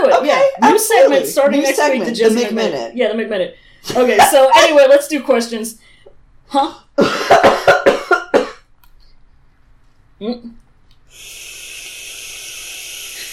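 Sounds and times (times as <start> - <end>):
speech: 0.6 - 5.9, 6.5 - 8.0, 10.2 - 11.5
person coughing: 7.0 - 8.7
breathy hiss: 11.1 - 13.3.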